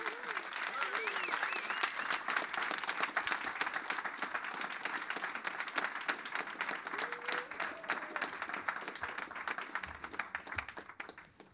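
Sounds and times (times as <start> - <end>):
scattered cheers and whoops: 0.0 - 2.2, 6.8 - 9.2
loud sustained applause from an audience: 0.0 - 11.5.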